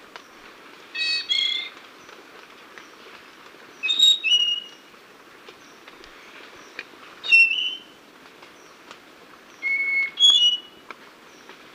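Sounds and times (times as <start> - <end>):
soft hiss: 0.0 - 11.7
Spotted Nightingale-Thrush whistled song in Ecuador: 1.0 - 1.7, 3.8 - 4.8, 7.2 - 7.9, 9.6 - 10.8.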